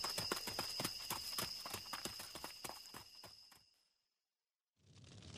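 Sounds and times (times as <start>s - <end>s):
faint high whine: 0.0s - 3.5s
horse hooves clip-clopping in a barn: 0.0s - 3.5s.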